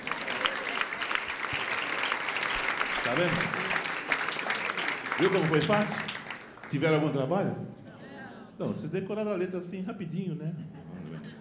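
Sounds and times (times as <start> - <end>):
audience applause: 0.0 - 7.2
speech: 3.0 - 3.6, 5.2 - 6.1, 6.7 - 7.8, 8.6 - 10.8
laughter: 10.4 - 11.3.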